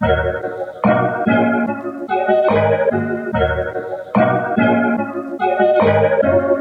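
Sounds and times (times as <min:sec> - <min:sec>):
classic melody loop in D sharp minor: 0:00.0 - 0:06.6.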